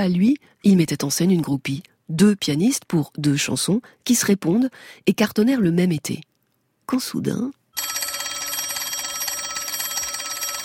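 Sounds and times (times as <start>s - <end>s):
speech: 0.0s - 6.3s, 6.9s - 7.9s
old-style telephone bell ringing: 7.8s - 10.6s.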